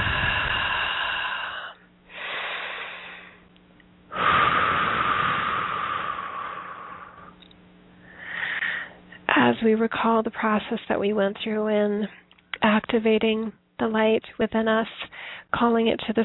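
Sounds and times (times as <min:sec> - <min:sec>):
slow deep breathing during a guided meditation: 0:00.0 - 0:03.5, 0:04.1 - 0:07.4, 0:08.0 - 0:09.2
speech: 0:09.6 - 0:16.2.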